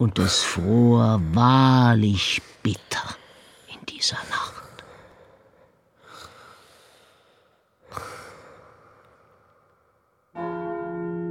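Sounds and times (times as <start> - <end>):
speech: 0.0 - 3.2, 3.9 - 4.6
soft breathy snorts: 7.9 - 8.8.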